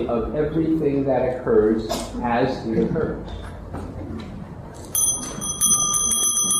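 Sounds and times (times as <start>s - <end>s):
speech: 0.0s - 3.8s
meditation bell ringing: 4.9s - 6.5s.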